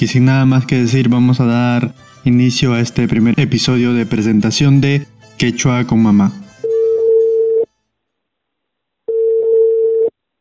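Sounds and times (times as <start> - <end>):
speech: 0.0 - 6.4
electronic telephone ringback tone: 6.7 - 7.7, 9.1 - 10.1.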